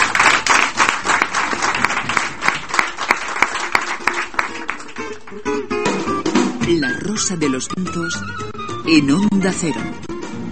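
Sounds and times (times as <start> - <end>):
radio studio applause of many hands clapping: 0.0 - 5.5
speech: 6.8 - 10.0.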